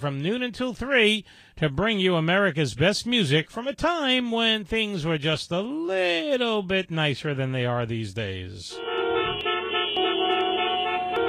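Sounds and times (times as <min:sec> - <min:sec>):
speech: 0:00.0 - 0:08.9
car horns honking: 0:08.7 - 0:11.2.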